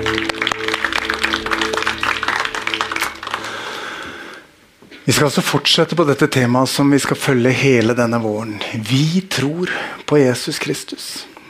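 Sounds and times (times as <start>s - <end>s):
low sustained hum: 0.0s - 4.3s
crowd applauding worship performers: 0.0s - 4.4s
speech: 5.1s - 11.3s.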